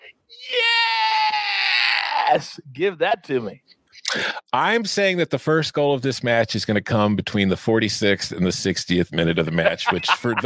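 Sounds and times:
man yelling excitedly: 0:00.3 - 0:02.6, 0:09.7 - 0:10.4
speech: 0:02.3 - 0:10.4
laughter: 0:09.4 - 0:10.4.

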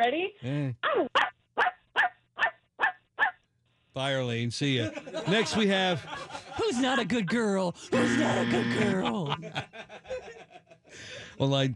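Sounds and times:
speech: 0:00.0 - 0:01.3, 0:04.0 - 0:09.7, 0:11.4 - 0:11.7
person imitating a dog barking: 0:00.8 - 0:03.3, 0:07.9 - 0:09.2
laughter: 0:04.7 - 0:11.0.

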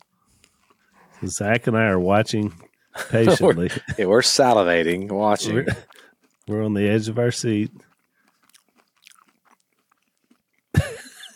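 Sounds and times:
crunching and chewing of a biscuit from Spain: 0:00.0 - 0:03.0, 0:04.9 - 0:11.3
speech: 0:01.2 - 0:07.9
laughter: 0:03.0 - 0:05.9, 0:10.8 - 0:11.3
person exclaiming: 0:05.4 - 0:05.8.

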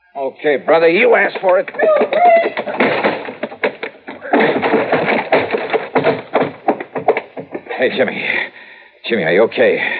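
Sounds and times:
speech: 0:00.2 - 0:02.9, 0:07.8 - 0:09.9
door crashing and splintering: 0:01.5 - 0:07.7
heavy blows and thuds on a door being broken down: 0:01.7 - 0:07.8.

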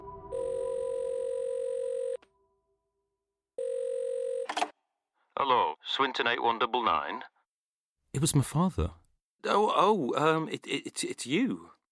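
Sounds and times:
telephone ringing tone down the line: 0:00.0 - 0:02.2, 0:03.6 - 0:04.7
speech: 0:05.4 - 0:07.3, 0:08.2 - 0:11.8.

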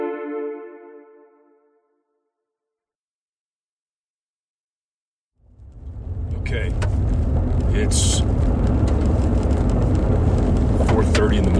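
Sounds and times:
car driving on a dirt road into a New Mexico wilderness reserve: 0:05.4 - 0:11.5
speech: 0:07.8 - 0:08.4, 0:11.2 - 0:11.5.

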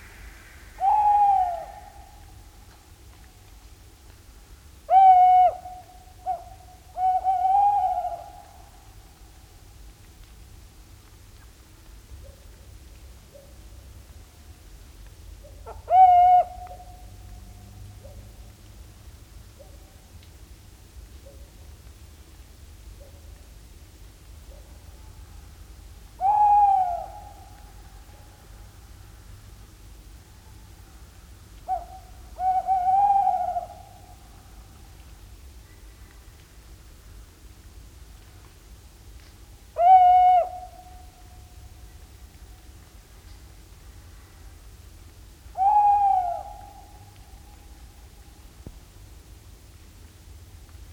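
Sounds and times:
steady low hiss: 0:00.0 - 0:50.9
tawny owl territorial calls: 0:00.2 - 0:02.5, 0:04.9 - 0:09.0, 0:15.4 - 0:17.1, 0:26.2 - 0:28.3, 0:31.6 - 0:34.4, 0:39.8 - 0:41.5, 0:45.5 - 0:47.8.

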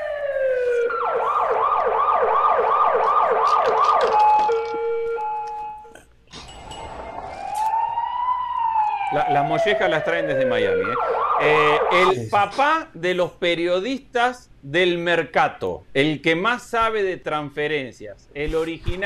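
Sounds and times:
siren wailing and yelping: 0:00.0 - 0:05.9, 0:06.6 - 0:12.2
speech: 0:09.3 - 0:19.0.

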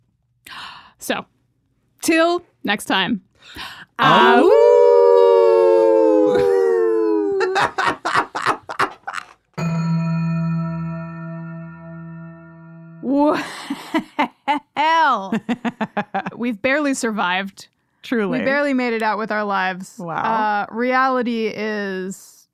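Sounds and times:
speech: 0:01.0 - 0:01.4, 0:02.0 - 0:04.8, 0:15.2 - 0:22.3
choppy yelps: 0:04.0 - 0:06.6
people howling like wolves: 0:04.0 - 0:07.8
laughter: 0:06.2 - 0:09.4, 0:15.3 - 0:16.5
sustained steady tone: 0:09.6 - 0:13.1.

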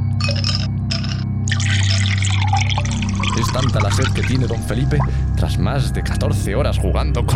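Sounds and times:
water pouring from a jug: 0:00.2 - 0:05.3
speech: 0:03.6 - 0:07.3.

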